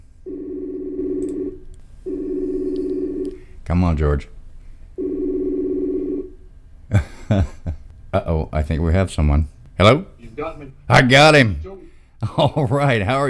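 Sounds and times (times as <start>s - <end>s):
outgoing phone call ringing tone: 0.2s - 3.4s, 5.0s - 6.4s
speech: 3.7s - 4.4s, 7.3s - 7.6s, 8.2s - 11.7s, 12.3s - 13.2s
laughter: 6.9s - 7.9s, 12.2s - 13.1s.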